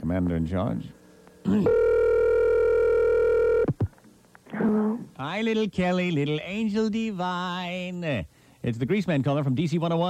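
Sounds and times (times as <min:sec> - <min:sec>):
speech: 0:00.0 - 0:01.8, 0:05.2 - 0:10.0
telephone dialing buzzing tone: 0:01.4 - 0:03.8.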